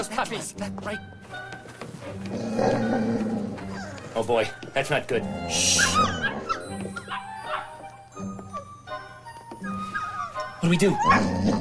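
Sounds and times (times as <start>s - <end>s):
speech: 0.0s - 1.4s, 2.0s - 3.6s, 4.2s - 6.3s, 10.6s - 11.5s
dog barking: 5.7s - 7.8s
dog whimpering and yipping: 5.7s - 8.8s, 9.8s - 11.5s.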